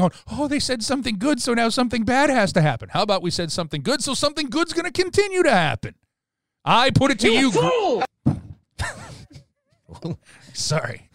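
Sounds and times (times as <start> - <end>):
speech: 0.0 - 6.0, 6.6 - 9.2, 9.9 - 11.1
fist banging on desk jolting microphone: 8.2 - 8.6.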